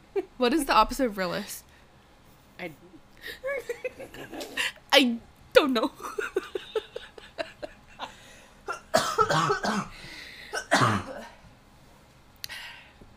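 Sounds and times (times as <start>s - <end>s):
speech: 0.4s - 1.7s, 2.6s - 6.6s
person coughing: 8.7s - 11.4s.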